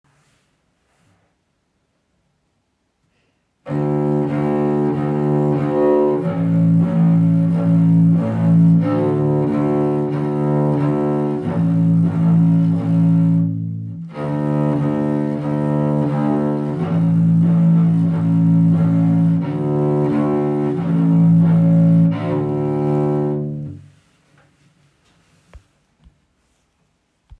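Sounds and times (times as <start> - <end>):
double bass played arco: 3.6 - 24.2.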